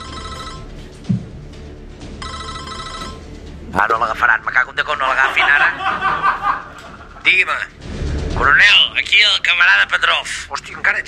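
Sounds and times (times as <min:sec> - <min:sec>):
electronic telephone ringing: 0:00.0 - 0:00.8, 0:02.2 - 0:03.4
soft thump: 0:01.1 - 0:01.4
speech: 0:03.7 - 0:06.6, 0:07.2 - 0:07.8, 0:08.4 - 0:11.0
laughter: 0:05.0 - 0:07.5.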